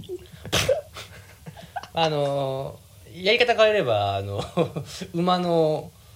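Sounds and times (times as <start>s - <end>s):
person imitating a dog's sneeze: 0.0s - 1.0s
speech: 2.0s - 6.0s.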